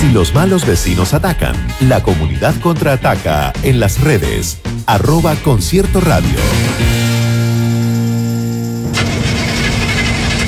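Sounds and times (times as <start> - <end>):
speech: 0.2 - 7.1
car engine cranking and failing to start: 8.2 - 10.4.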